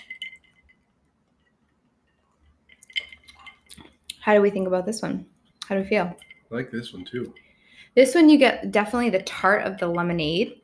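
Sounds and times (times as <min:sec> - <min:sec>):
glasses clinking in a toast: 0:00.0 - 0:01.6, 0:02.4 - 0:04.0, 0:05.8 - 0:10.4
faint room noise: 0:00.0 - 0:10.6
speech: 0:04.2 - 0:07.4, 0:08.0 - 0:10.6.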